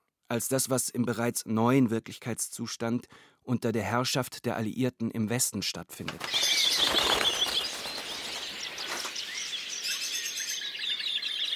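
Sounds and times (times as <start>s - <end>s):
speech: 0.3s - 6.9s
dense chorus of shrill bird calls in a zoo enclosure: 6.2s - 11.5s.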